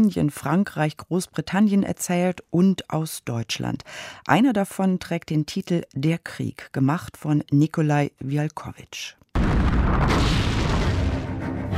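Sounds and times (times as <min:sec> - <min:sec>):
speech: 0:00.0 - 0:10.5
artillery fire in a war film: 0:09.4 - 0:11.7.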